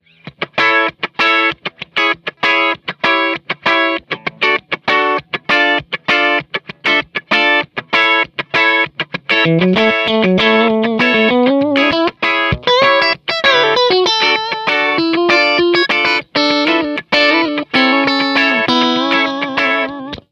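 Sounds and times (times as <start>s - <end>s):
funky rhythm: 0.2s - 20.3s.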